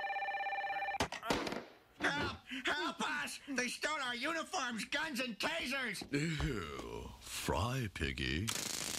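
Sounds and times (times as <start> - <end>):
telephone bell ringing: 0.0 - 1.0
speech: 2.5 - 8.8.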